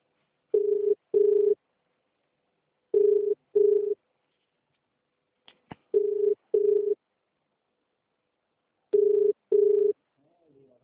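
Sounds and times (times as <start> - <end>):
phone ringing with double-burst electronic tones: 0.5 - 1.6, 2.9 - 4.0, 5.9 - 7.0, 9.0 - 10.0.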